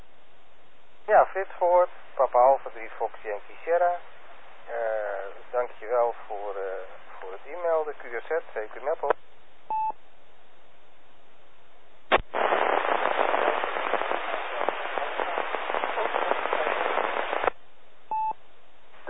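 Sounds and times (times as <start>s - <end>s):
radio static hiss: 1.0s - 9.2s, 12.1s - 18.3s
speech: 1.1s - 4.1s, 4.7s - 9.2s
short electronic beep tones: 18.1s - 18.4s.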